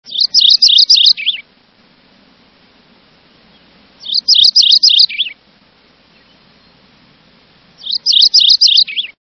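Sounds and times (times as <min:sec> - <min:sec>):
Mourning Warbler singing: 0:00.0 - 0:01.5, 0:03.2 - 0:05.4, 0:06.0 - 0:09.2.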